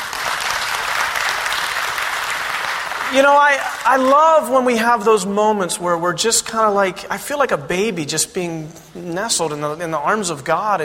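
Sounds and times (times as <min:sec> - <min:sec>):
large congregation applauding: 0:00.0 - 0:04.6
speech: 0:03.1 - 0:10.8.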